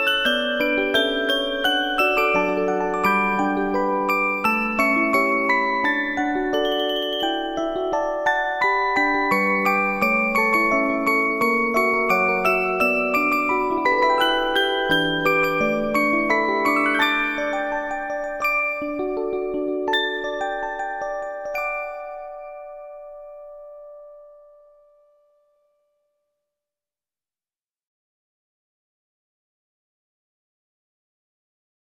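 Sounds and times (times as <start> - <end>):
bell organ: 0.2 - 8.1, 8.7 - 22.9.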